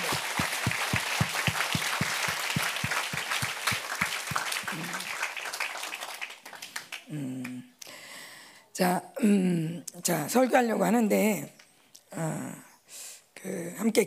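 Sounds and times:
large crowd applauding: 0.0s - 7.2s
speech: 8.8s - 11.6s, 12.2s - 12.6s, 13.4s - 14.0s.

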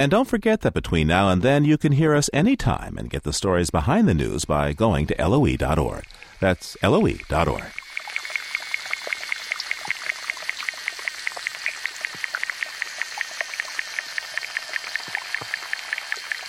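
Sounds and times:
speech: 0.0s - 7.8s
underwater pond insects from small ponds clicking: 4.2s - 16.4s.

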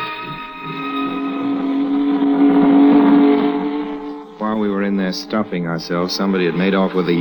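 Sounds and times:
speedboat engine racing: 0.6s - 7.2s
speech: 5.1s - 7.2s.

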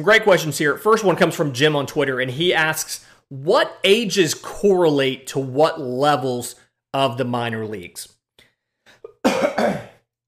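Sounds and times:
speech: 0.0s - 8.1s
person coughing harshly: 9.1s - 10.0s
soft throat clearing: 9.1s - 10.0s.

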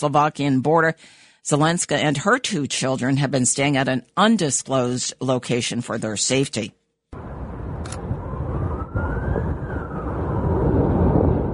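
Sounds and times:
speech: 0.0s - 8.0s
dense steady low rumble: 7.2s - 11.5s
siren wailing: 8.0s - 11.5s.

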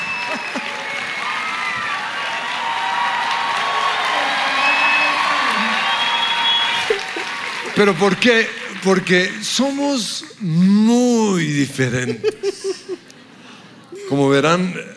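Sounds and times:
laughter: 0.0s - 1.0s, 5.4s - 9.5s, 11.6s - 14.2s
audience cheers and whoops: 0.0s - 7.8s
large audience applauding: 0.0s - 10.6s
excited audience voices: 0.0s - 13.2s
speech: 7.8s - 12.4s, 14.1s - 14.9s.

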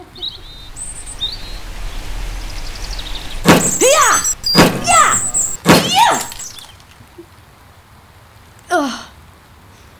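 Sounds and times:
bird chirps and short whistled calls: 0.0s - 6.8s
rain falling: 0.0s - 7.1s.

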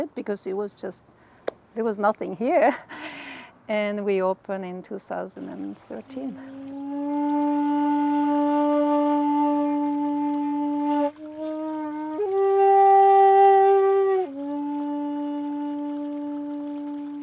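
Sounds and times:
speech: 0.0s - 1.2s, 1.8s - 7.0s
shakuhachi Japanese bamboo flute playing long breathy held notes: 6.4s - 17.2s.

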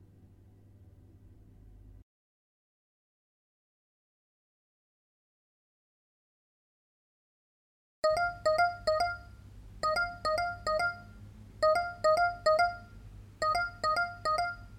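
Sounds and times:
low hum: 0.0s - 2.0s, 8.0s - 14.7s
phone ringtone with bright electronic beeps: 8.0s - 14.7s.

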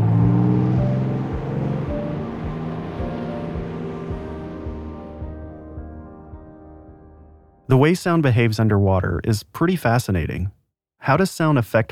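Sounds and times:
cruise liner or trawler motors heard underwater: 0.0s - 5.8s
speech: 7.7s - 11.9s.

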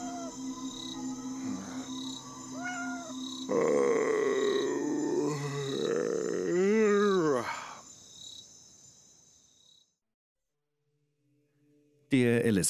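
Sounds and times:
cat meowing: 0.0s - 0.4s, 2.6s - 3.2s
crickets chirping at night: 0.0s - 9.9s
speech: 12.1s - 12.6s.

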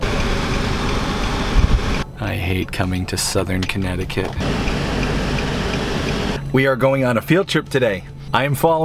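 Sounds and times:
road traffic rumble: 0.0s - 6.6s
speech: 2.3s - 5.1s, 6.5s - 8.8s.

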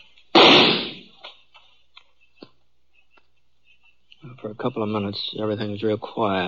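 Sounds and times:
gunshots echoing in a canyon: 0.3s - 1.1s
speech: 4.4s - 6.4s.

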